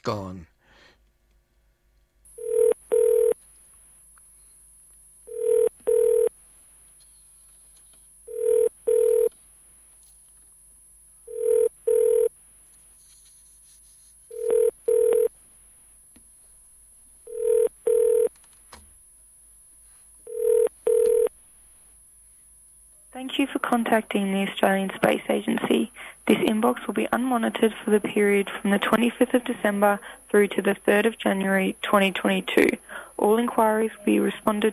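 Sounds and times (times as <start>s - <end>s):
speech: 0.0s - 0.5s, 23.9s - 34.7s
phone line ringback tone from a call: 2.4s - 3.4s, 5.3s - 6.3s, 8.3s - 9.3s, 11.3s - 12.3s, 14.3s - 15.3s, 17.3s - 18.3s, 20.3s - 21.3s.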